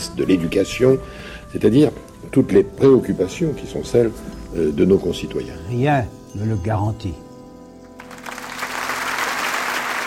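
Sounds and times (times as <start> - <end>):
speech: 0.2 - 7.2
audience applauding in a morning studio: 8.0 - 10.0.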